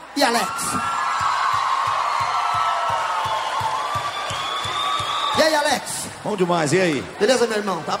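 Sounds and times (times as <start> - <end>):
large crowd applauding and cheering loudly: 0.0 - 7.9
speech: 0.2 - 1.0, 5.4 - 7.9
scattered whoops from the crowd: 0.4 - 5.4
steady low thumping beat: 0.8 - 4.8.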